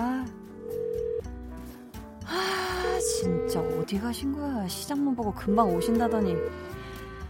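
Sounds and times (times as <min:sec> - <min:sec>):
electronic telephone ringback tone: 0:00.6 - 0:01.3, 0:02.8 - 0:04.0, 0:05.5 - 0:06.7
speech: 0:03.2 - 0:06.8.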